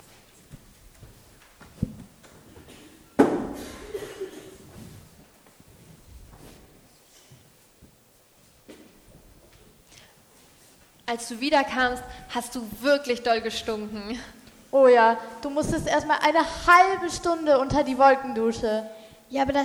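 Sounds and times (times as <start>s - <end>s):
quiet shuffling: 0.0s - 16.1s
door shutting with a solid thud: 2.8s - 4.0s
speech: 11.1s - 19.6s.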